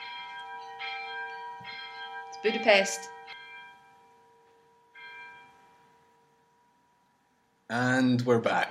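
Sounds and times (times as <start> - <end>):
church bells ringing: 0.0 - 6.9
speech: 2.4 - 3.2, 7.7 - 8.6.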